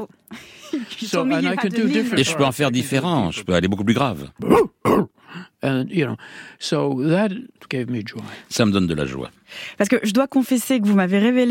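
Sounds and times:
speech: 0:00.0 - 0:11.4
person imitating a dog bark: 0:04.4 - 0:05.1.

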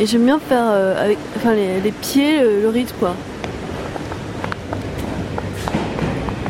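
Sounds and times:
speech: 0:00.0 - 0:03.3
metro station escalator humming with a mechanical rumble: 0:00.0 - 0:06.4
light clacks and footstep-like knocks: 0:03.4 - 0:06.4.

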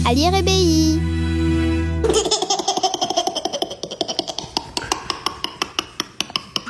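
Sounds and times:
speech: 0:00.1 - 0:01.1
baby laughing in breathy giggles: 0:02.0 - 0:06.6.

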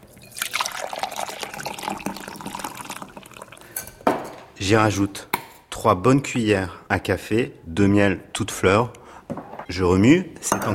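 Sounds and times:
verbena herbal infusion being strained, pouring and trickling: 0:00.0 - 0:04.0
speech: 0:04.6 - 0:09.0, 0:09.7 - 0:10.7.

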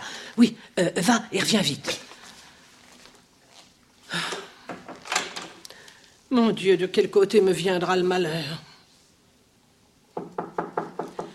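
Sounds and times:
speech: 0:00.4 - 0:02.0, 0:06.3 - 0:08.7
dull woody knocking on a door: 0:10.2 - 0:11.3.

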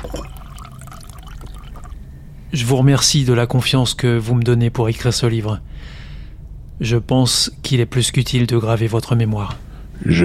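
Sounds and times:
water pouring into a drinking glass: 0:00.0 - 0:02.0
low hum: 0:00.0 - 0:10.2
speech: 0:02.5 - 0:06.0, 0:06.8 - 0:10.2.

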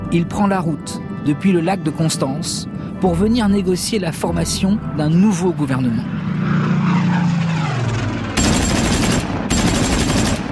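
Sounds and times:
speech: 0:00.1 - 0:06.2
propeller planes roaring past overhead: 0:00.8 - 0:10.5
rapid machine-gun fire from aircraft strafing a car: 0:08.4 - 0:10.5.

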